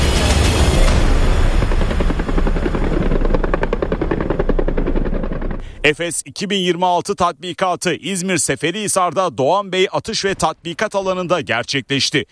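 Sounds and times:
attack helicopters roaring overhead during a military exercise: 0.0s - 6.2s
speech: 5.8s - 12.2s.

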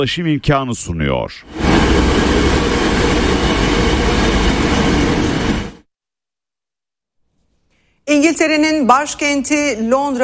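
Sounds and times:
speech: 0.0s - 3.9s, 8.2s - 10.2s
high-speed passenger train running on the Çerkezköy–Kapıkule rail line: 1.5s - 5.8s.

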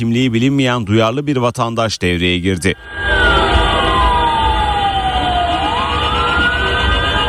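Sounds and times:
speech: 0.0s - 3.5s
ambulance siren wailing while stuck on a jammed road: 2.8s - 7.2s
steady low rumble of traffic: 2.9s - 7.2s.

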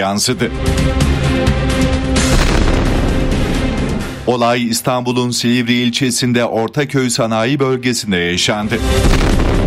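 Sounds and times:
speech: 0.0s - 2.9s, 4.3s - 9.6s
explosive device detonating in a man's hand outside a recycling factory: 2.2s - 4.3s, 9.0s - 9.6s.

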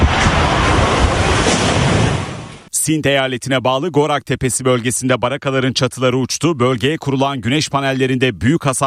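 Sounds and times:
strong wind of a dust storm sweeping across Sindh province, Pakistan: 0.0s - 2.7s
speech: 2.9s - 8.8s.

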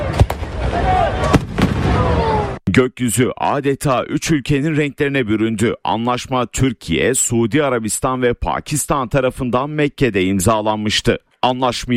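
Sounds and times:
fireworks bangs during a celebration in a capital city: 0.0s - 2.4s
speech: 2.8s - 11.9s.

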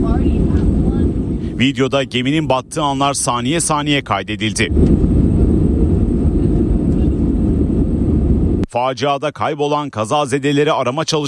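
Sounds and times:
jet engine drone heard from inside plane cabin: 0.0s - 8.7s
speech: 1.6s - 5.0s, 8.7s - 11.2s.

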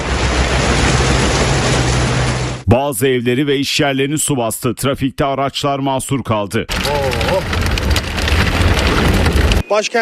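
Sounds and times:
deep rumble under the rain: 0.0s - 2.6s, 6.7s - 9.6s
sudden heavy downpour of rain: 0.0s - 2.6s, 6.7s - 9.6s
speech: 2.7s - 8.0s, 8.9s - 10.0s.

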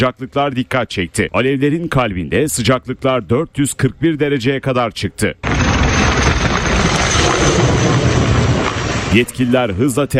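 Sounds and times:
speech: 0.0s - 5.7s, 9.1s - 10.1s
firefighting aircraft flying over a wildfire: 5.4s - 10.1s.

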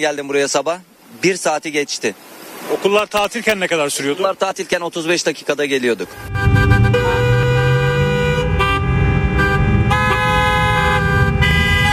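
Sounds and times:
speech: 0.0s - 6.7s
city street traffic engines rumbling: 6.0s - 11.9s
several car horns honking in city street traffic: 6.1s - 11.9s.

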